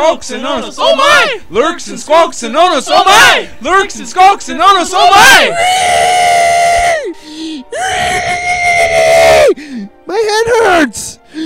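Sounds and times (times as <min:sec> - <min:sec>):
speech: 0:00.0 - 0:06.3, 0:10.1 - 0:11.4
voice imitating a primal scream roar: 0:05.3 - 0:07.1, 0:07.7 - 0:09.6.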